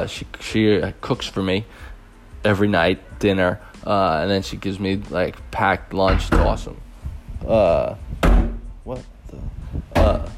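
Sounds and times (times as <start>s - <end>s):
speech: 0.0s - 6.8s, 7.4s - 10.3s
children banging on a door: 6.0s - 6.7s, 8.2s - 8.7s.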